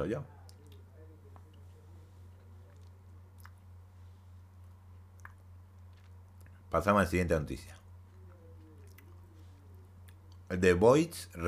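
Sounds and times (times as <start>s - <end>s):
speech: 0.0s - 0.4s, 6.7s - 7.8s, 10.5s - 11.4s
low steady hum: 0.0s - 11.4s
person chewing food: 0.5s - 6.7s, 7.8s - 10.5s.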